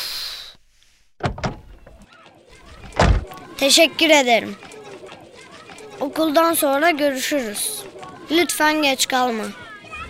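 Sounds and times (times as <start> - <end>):
door thumping and rattling: 1.2 - 2.0, 2.6 - 3.4
heavy knocks on a door: 1.2 - 2.0, 2.8 - 3.4
scraping and fumbling at a door: 1.2 - 6.8
speech: 3.6 - 4.7, 6.1 - 9.6.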